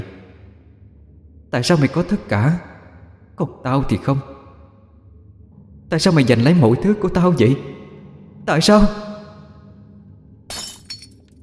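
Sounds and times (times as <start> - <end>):
speech: 1.5 - 2.7, 3.4 - 4.3, 5.9 - 7.7, 8.5 - 9.1
glass mirror smashing and shattering on the floor: 10.5 - 11.2
glass shards tinkling: 10.5 - 11.2.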